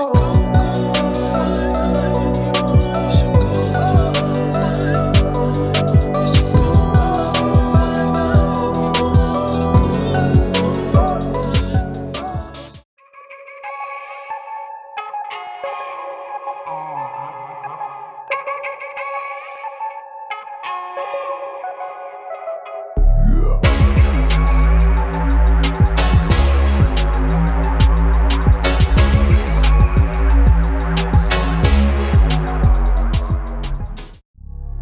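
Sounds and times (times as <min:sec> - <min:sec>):
trap beat: 0:00.2 - 0:12.8, 0:23.6 - 0:34.2.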